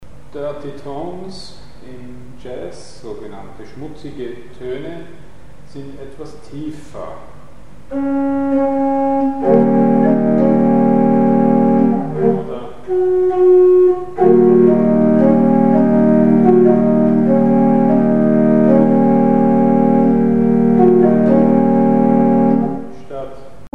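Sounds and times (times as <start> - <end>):
dirty tones: 7.9 - 23.2.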